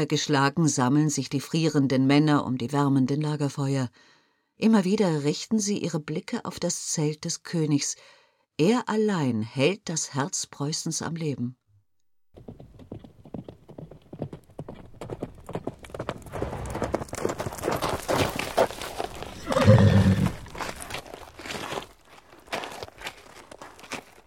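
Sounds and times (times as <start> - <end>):
speech: 0.0 - 11.6
hooves of a sweat-soaked horse galloping into a camp: 12.3 - 24.2
horse whinnying loudly: 19.2 - 20.6.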